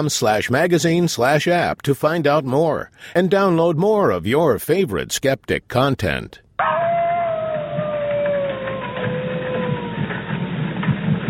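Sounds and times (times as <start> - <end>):
speech: 0.0 - 6.7
wolf howling: 6.6 - 10.4.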